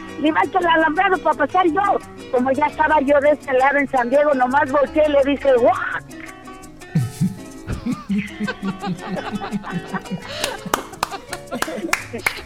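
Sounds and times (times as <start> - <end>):
speech: 0.2 - 5.9, 8.1 - 10.7, 11.6 - 12.4
audience laughter: 7.0 - 12.4
audience applause: 10.2 - 12.4.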